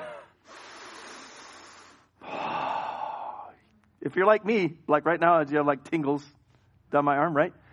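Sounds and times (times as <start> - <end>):
deep cleansing breath in and out: 0.0 - 3.6
speech: 4.0 - 7.6.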